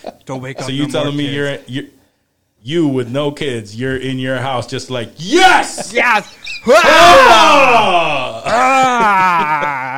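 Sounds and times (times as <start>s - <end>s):
speech: 0.0s - 2.0s, 2.6s - 9.9s
person's exaggerated loud sexual moaning and yelling: 6.7s - 9.9s.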